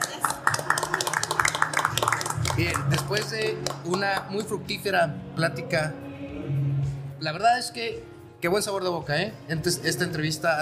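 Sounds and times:
small group clapping: 0:00.0 - 0:04.6
speech: 0:02.6 - 0:06.0, 0:07.2 - 0:10.6.

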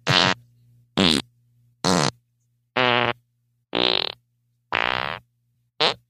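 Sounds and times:
loud buzzy farts: 0:00.0 - 0:00.4, 0:01.0 - 0:01.2, 0:01.8 - 0:02.2, 0:02.8 - 0:03.2, 0:03.8 - 0:05.2, 0:05.8 - 0:06.0.

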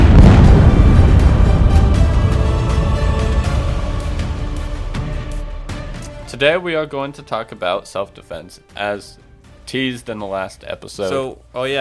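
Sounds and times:
bomb explosion: 0:00.0 - 0:06.0
speech: 0:06.4 - 0:11.7.

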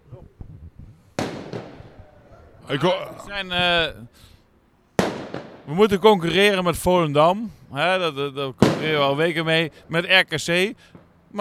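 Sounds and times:
fireworks crackling and whistling: 0:01.2 - 0:02.1, 0:05.0 - 0:05.7
fireworks banging: 0:01.2 - 0:02.2, 0:05.0 - 0:06.6, 0:08.5 - 0:10.0, 0:10.8 - 0:11.3
speech: 0:02.7 - 0:04.3, 0:05.7 - 0:11.4.

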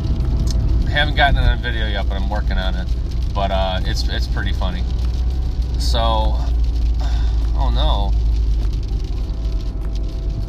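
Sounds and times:
light rain pattering on a car: 0:00.0 - 0:10.4
speech: 0:01.0 - 0:05.1, 0:05.8 - 0:08.2.

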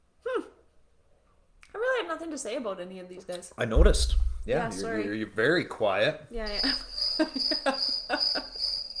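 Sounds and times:
speech: 0:02.1 - 0:08.2
crickets chirping sound effect: 0:06.4 - 0:08.9.

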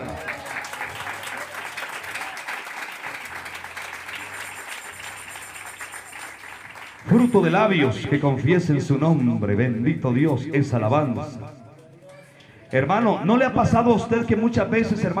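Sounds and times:
audience clapping hands: 0:00.0 - 0:08.2
speech: 0:07.1 - 0:11.6, 0:12.7 - 0:15.1.

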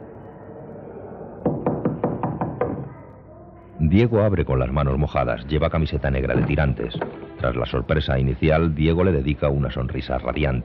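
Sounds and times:
low steady noise: 0:00.0 - 0:10.6
knuckles knocking on the door of a home: 0:01.5 - 0:02.9
speech: 0:03.9 - 0:10.6.

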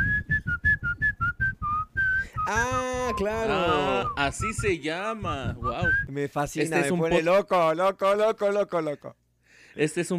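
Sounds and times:
whistled tune of a song: 0:00.0 - 0:04.8, 0:05.6 - 0:06.1
speech: 0:02.4 - 0:09.2, 0:09.8 - 0:10.1.

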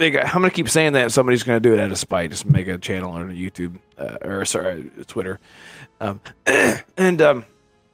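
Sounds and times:
speech: 0:00.0 - 0:07.5
person coughing into microphone: 0:06.4 - 0:06.9.

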